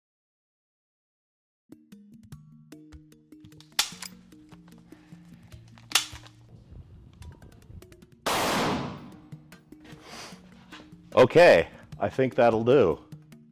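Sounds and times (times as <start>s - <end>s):
gunshots fired at a pig ear target: 8.3s - 9.2s
speech: 11.2s - 13.0s.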